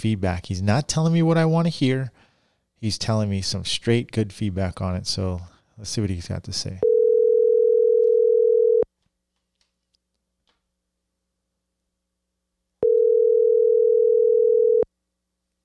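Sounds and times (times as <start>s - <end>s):
speech: 0.0s - 2.2s, 2.8s - 6.9s
telephone ringback on an outgoing call: 6.8s - 8.8s, 12.8s - 14.9s.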